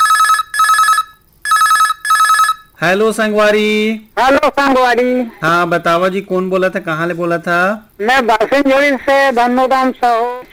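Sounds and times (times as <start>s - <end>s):
telephone ringing in a trilling double pattern: 0.0s - 2.8s
speech: 2.8s - 10.4s.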